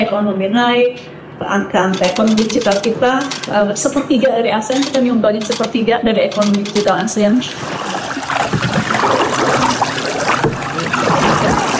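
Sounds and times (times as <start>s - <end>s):
speech: 0.0s - 8.0s
water lapping around a small boat at Kampung Laut: 7.5s - 11.7s.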